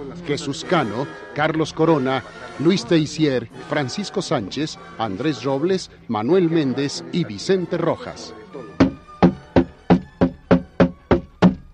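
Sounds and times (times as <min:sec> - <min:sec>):
speech: 0:00.1 - 0:08.4
heavy blows pounding on the door of a house: 0:08.8 - 0:11.7.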